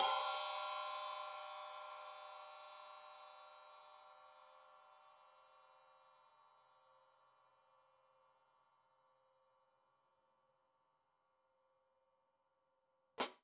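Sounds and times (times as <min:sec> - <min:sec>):
Sab open hi-hat: 0:00.0 - 0:01.8, 0:13.2 - 0:13.4.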